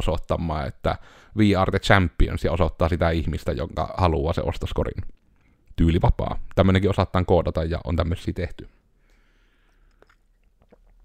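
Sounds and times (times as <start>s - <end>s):
speech: 0.0s - 5.2s, 5.8s - 8.8s
soft mouth clicks: 9.0s - 11.0s
slurping sip of coffee: 9.5s - 11.0s
person swallowing coffee: 9.7s - 11.0s.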